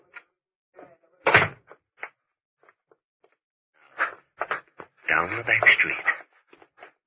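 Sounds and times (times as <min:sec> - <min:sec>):
door pulled shut with a solid thump: 0:01.3 - 0:01.6
speech: 0:05.3 - 0:06.1.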